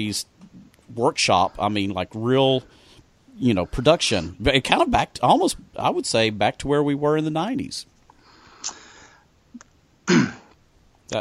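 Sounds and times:
speech: 0.0s - 2.8s, 3.4s - 7.9s, 10.1s - 10.4s
man clearing his throat: 10.1s - 10.5s.

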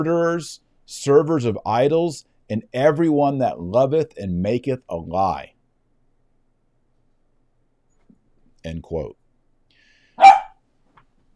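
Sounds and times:
speech: 0.0s - 5.5s, 8.6s - 9.2s
dog barking: 10.2s - 10.6s.

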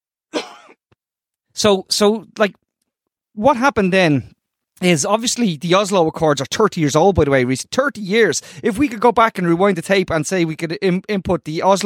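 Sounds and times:
person coughing harshly: 0.3s - 0.9s
speech: 1.6s - 2.6s, 3.4s - 11.8s.

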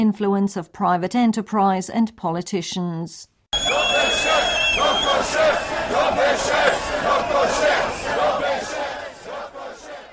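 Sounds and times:
speech: 0.0s - 7.9s
crowd of angry protesting students shouting outside government headquarters: 3.6s - 10.1s.

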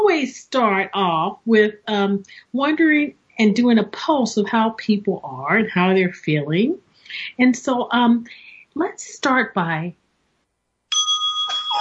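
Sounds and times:
speech: 0.1s - 10.0s
single bright bell chime for mindful check: 10.9s - 11.7s.

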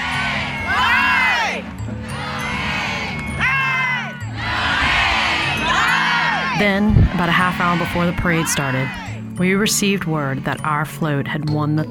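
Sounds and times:
group of voices shouting a rhythmic cheer in unison in grandstands: 0.0s - 9.2s
dense crowd murmur in an open outdoor space: 0.0s - 9.4s
speech: 6.6s - 11.8s.

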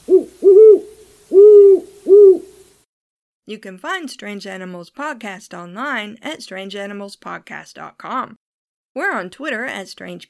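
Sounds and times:
great horned owl hooting: 0.0s - 2.7s
speech: 3.5s - 8.4s, 9.0s - 10.2s.

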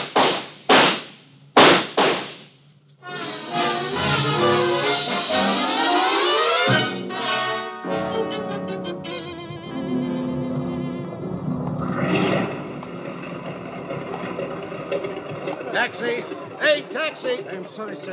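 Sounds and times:
gunshots in a radio drama: 0.0s - 2.5s
dramatic music in a radio drama: 3.0s - 16.6s
laughter: 8.0s - 9.3s, 14.2s - 18.1s.

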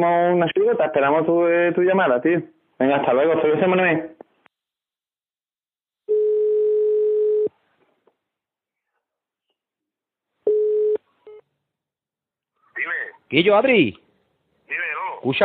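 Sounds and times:
speech: 0.0s - 4.2s, 13.3s - 14.0s, 14.7s - 15.4s
electronic telephone tone after a call was cut off: 6.1s - 7.6s, 10.4s - 11.5s.

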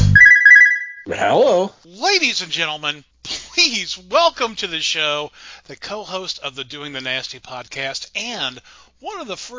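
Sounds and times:
landline telephone ringing on an outgoing speakerphone call: 0.2s - 1.1s
speech: 2.2s - 9.5s.

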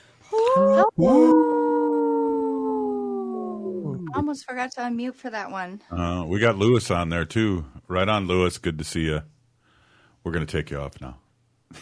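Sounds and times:
wolf howling: 0.4s - 4.2s
speech: 0.8s - 1.5s, 4.3s - 9.4s, 10.2s - 11.8s.

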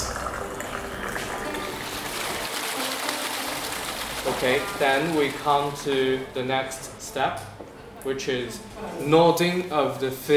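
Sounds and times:
hot water poured from very high out of a pottery teapot: 0.0s - 6.9s
speech: 4.4s - 10.3s.

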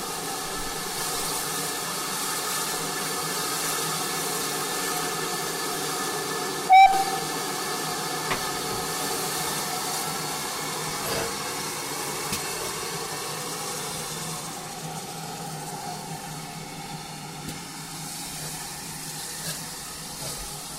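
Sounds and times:
steam locomotive hissing at a station during a crew change: 0.0s - 20.7s
steam locomotive whistle blast: 6.7s - 7.6s.

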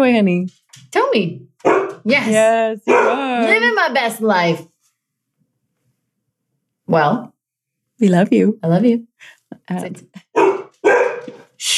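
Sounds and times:
speech: 0.0s - 4.7s, 6.9s - 7.3s, 8.0s - 10.5s, 11.6s - 11.7s
dog barking and growling while playing with a toy dog bone: 1.6s - 2.1s, 2.8s - 3.7s, 10.1s - 11.6s.

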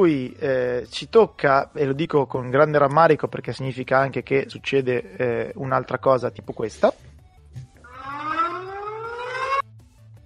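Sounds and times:
speech: 0.0s - 7.7s
loud siren wailing with rising pitch: 7.8s - 9.7s.

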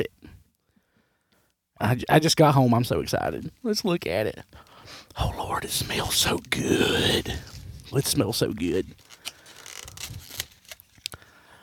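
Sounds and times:
speech: 1.8s - 9.0s
checkered paper crinkling as takeout chicken is unwrapped: 6.0s - 11.3s.

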